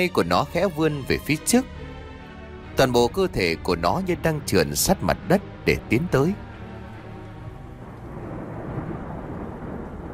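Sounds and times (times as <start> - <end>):
speech: 0.0 - 1.8, 2.8 - 6.4
rolling thunder rumble: 6.5 - 10.1.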